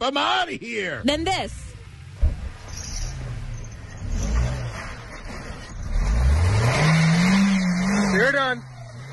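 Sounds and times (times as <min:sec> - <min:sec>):
speech: 0:00.0 - 0:01.7, 0:08.2 - 0:08.7
car engine revving with wheels spinning stuck in snow: 0:01.0 - 0:09.1
scraping grinding of car wheels spinning in snow: 0:01.1 - 0:08.3.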